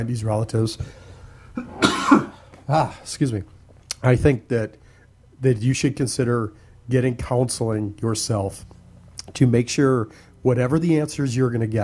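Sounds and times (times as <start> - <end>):
speech: 0.0 - 4.8, 5.4 - 11.8
person coughing: 1.6 - 3.0.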